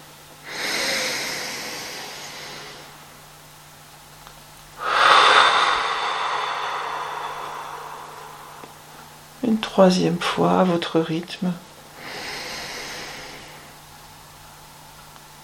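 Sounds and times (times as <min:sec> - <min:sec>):
person exhaling forcefully during a relaxation breathing exercise: 0:00.5 - 0:02.8, 0:04.8 - 0:09.3, 0:12.0 - 0:13.7
speech: 0:09.5 - 0:11.7.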